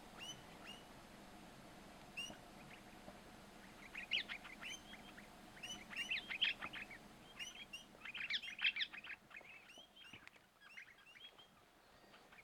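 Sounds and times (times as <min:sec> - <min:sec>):
parrot soundscape: 0:00.1 - 0:00.9, 0:03.6 - 0:12.4.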